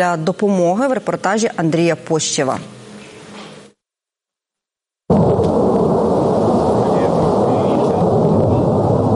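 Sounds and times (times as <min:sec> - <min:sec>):
speech: 0:00.0 - 0:02.8
Ukrainian military jet aircraft returning from a mission passing overhead: 0:05.2 - 0:09.1.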